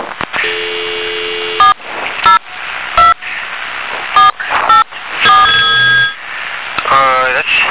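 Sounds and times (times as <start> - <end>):
short electronic phone line beeps: 0.4 - 2.4, 3.0 - 3.2, 4.2 - 6.2
telephone ringing over a thin tinny phone line during a radio broadcast: 0.4 - 2.4, 4.2 - 6.2.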